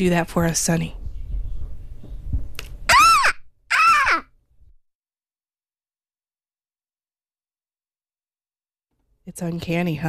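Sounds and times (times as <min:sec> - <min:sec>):
speech: 0:00.0 - 0:01.0, 0:09.3 - 0:10.0
girl imitating a seagull call: 0:02.9 - 0:04.3.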